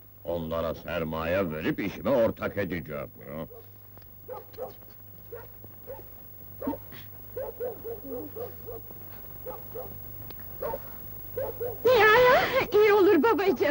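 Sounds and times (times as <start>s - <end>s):
low steady hum: 0.0s - 13.6s
speech: 0.3s - 3.6s, 4.3s - 6.8s, 7.4s - 13.6s
dog barking: 3.5s - 10.0s, 10.6s - 11.9s.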